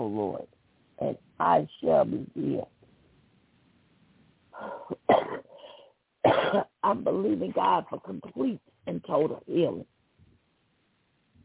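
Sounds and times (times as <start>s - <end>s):
speech: 0.1s - 2.8s, 6.2s - 10.0s
wheezy breath: 4.6s - 6.0s
person coughing: 4.9s - 6.8s.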